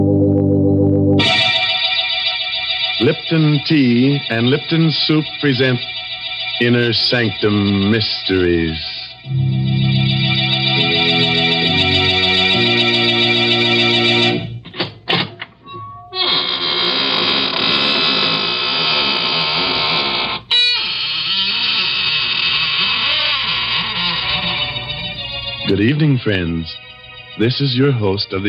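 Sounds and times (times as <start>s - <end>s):
low sustained organ-like chords: 0.0s - 18.2s, 23.8s - 28.4s
speech: 3.0s - 9.6s, 25.8s - 28.4s
squeaking door creaking open: 14.7s - 25.1s.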